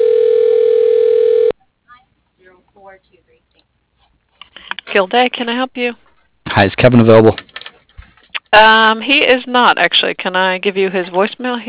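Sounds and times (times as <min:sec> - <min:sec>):
steady single-pitched telephone tone while a call is transferred: 0:00.0 - 0:01.6
speech: 0:05.0 - 0:07.4, 0:08.5 - 0:11.6.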